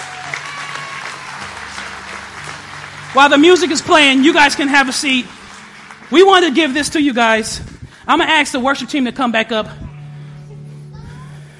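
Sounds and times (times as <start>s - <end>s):
audience clapping at a church service: 0.0s - 8.7s
speech: 3.1s - 5.4s, 6.1s - 9.8s.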